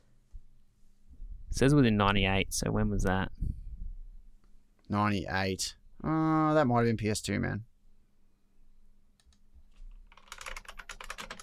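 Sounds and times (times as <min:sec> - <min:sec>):
speech: 0:01.6 - 0:03.6, 0:04.9 - 0:07.7
typing on an old computer keyboard from 1993: 0:09.2 - 0:11.4.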